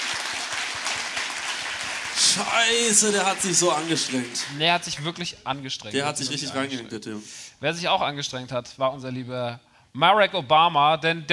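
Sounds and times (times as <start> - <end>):
small studio audience applause: 0.0 - 4.6
speech: 2.2 - 11.3.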